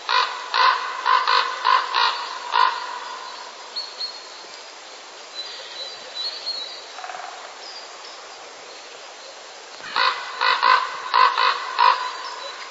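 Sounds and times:
common raven giving rough croaking courtship caws: 0.0 - 3.3, 9.8 - 12.6
faint background hiss: 0.0 - 12.6.

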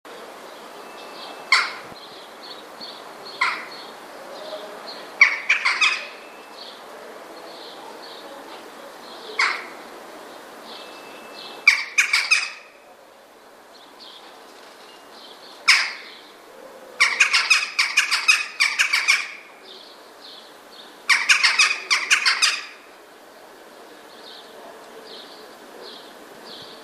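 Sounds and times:
western jackdaw calling: 1.0 - 2.6, 3.3 - 3.9, 5.2 - 6.6, 9.4 - 9.8, 10.9 - 12.8, 15.5 - 16.4, 17.0 - 19.5, 20.9 - 22.9.

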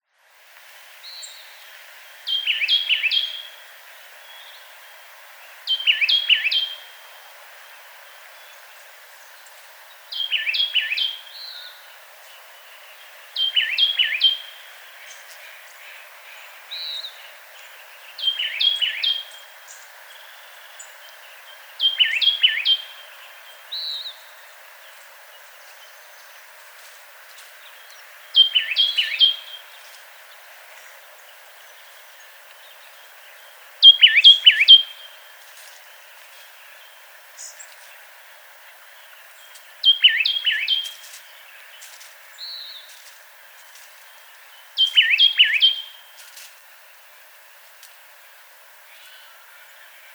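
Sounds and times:
Baeolophus inornatus oak titmouse calling: 1.0 - 24.8, 26.8 - 30.2, 33.8 - 36.4, 39.6 - 41.2, 44.8 - 46.5.

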